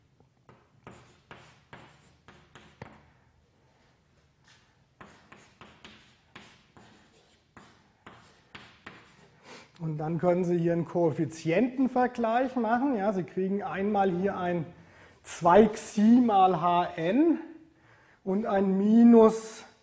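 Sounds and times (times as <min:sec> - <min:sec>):
writing strokes during a mathematics lecture: 0:00.5 - 0:03.1, 0:05.0 - 0:09.4
speech: 0:09.8 - 0:14.8, 0:15.4 - 0:17.5, 0:18.3 - 0:19.6.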